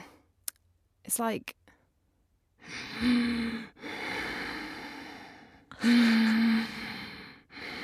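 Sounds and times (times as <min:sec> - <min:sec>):
speech: 0:01.1 - 0:01.6, 0:02.6 - 0:04.0
person imitating loud raspy heavy breathing during sleep: 0:02.6 - 0:07.8.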